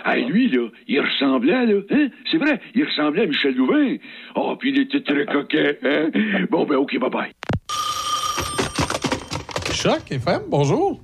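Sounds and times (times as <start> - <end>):
speech: 0.0 - 7.4, 9.8 - 11.0
telephone bell ringing: 7.7 - 9.5
clattering noises: 8.4 - 10.1.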